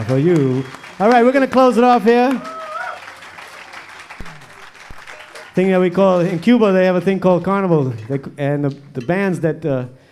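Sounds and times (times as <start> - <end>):
speech: 0.0 - 2.5, 5.6 - 10.0
audience applauding after a rumba performance: 0.0 - 7.0.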